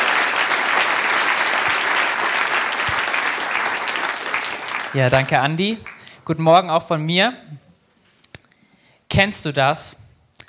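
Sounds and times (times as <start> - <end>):
audience applause: 0.0 - 6.3
speech: 4.9 - 7.6, 9.1 - 10.0.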